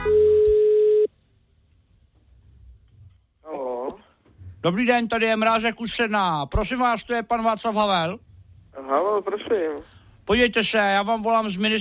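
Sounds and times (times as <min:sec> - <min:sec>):
telephone call ringing as a long electronic beep: 0:00.0 - 0:01.1
speech: 0:04.6 - 0:11.7.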